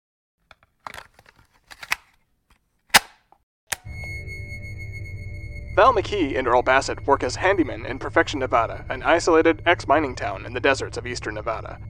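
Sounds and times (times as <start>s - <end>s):
tape being popped into a player: 0.5s - 2.2s, 2.9s - 3.9s
speech: 5.8s - 11.8s.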